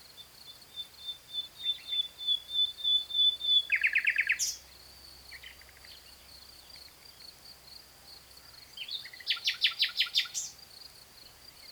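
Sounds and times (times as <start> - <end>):
common nightingale Luscinia megarhynchos singing: 0.0 - 7.0, 8.6 - 10.6.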